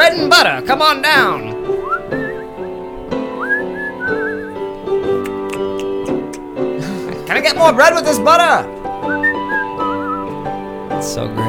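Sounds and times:
steady sustained musical backing: 0.0 - 11.4
speech: 0.1 - 2.2, 7.4 - 9.2, 11.0 - 11.4
person whistling a short wavering melody: 1.8 - 2.8, 3.4 - 4.6, 9.0 - 10.4.

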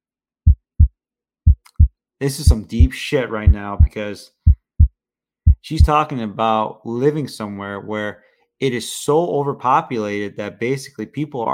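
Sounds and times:
deep heartbeat: 0.5 - 0.9, 1.5 - 1.9, 2.5 - 4.9, 5.5 - 5.9
speech: 2.2 - 4.4, 5.7 - 11.5.

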